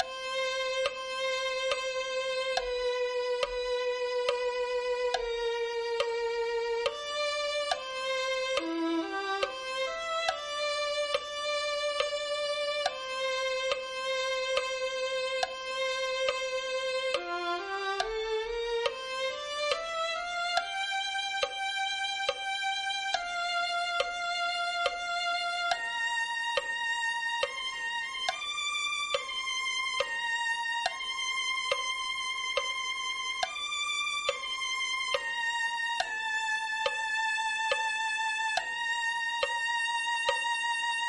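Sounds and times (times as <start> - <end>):
violin: 0.0 - 41.0.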